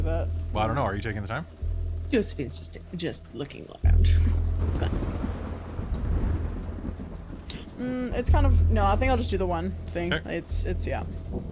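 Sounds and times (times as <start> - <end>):
steady wash of rain: 0.0 - 11.5
speech: 0.2 - 5.4, 7.8 - 11.5
loud thunder crack and low rumble overhead: 3.9 - 11.5.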